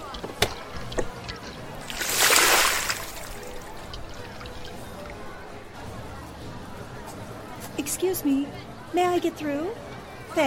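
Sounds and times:
water sloshing: 0.5 - 5.4
water gushing out of a car door to drain the car: 1.8 - 4.9
speech: 7.9 - 10.4.

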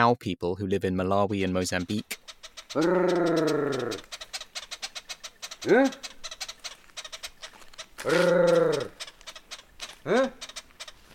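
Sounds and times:
speech: 0.0 - 4.2, 5.6 - 6.1, 8.0 - 9.0, 10.0 - 10.5
honeyguide chattering: 1.2 - 11.1
man making a long rolling trill to signal a honeyguide: 1.3 - 11.1
man making a short grunt-like call to signal a honeyguide: 2.8 - 4.0, 5.7 - 6.0, 8.0 - 9.0, 10.1 - 10.4.

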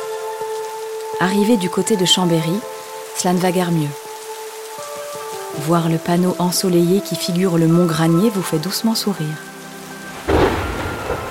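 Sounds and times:
heavy rain downpour: 0.0 - 11.3
speech: 1.1 - 4.0, 5.6 - 9.5
loud crack and low rumble of thunder: 10.2 - 11.3.

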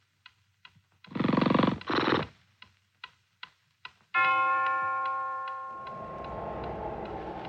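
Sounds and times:
clock ticking: 0.0 - 1.1, 2.5 - 7.4
clock bell striking one: 4.2 - 7.4.

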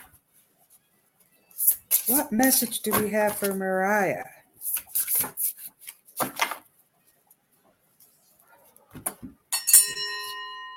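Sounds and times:
speech: 2.1 - 4.4
doorbell chime: 9.5 - 10.7.

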